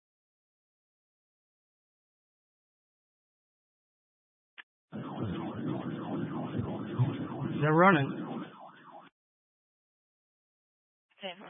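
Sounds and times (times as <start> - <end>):
speech: 4.9 - 8.5
police car siren wailing: 4.9 - 9.1.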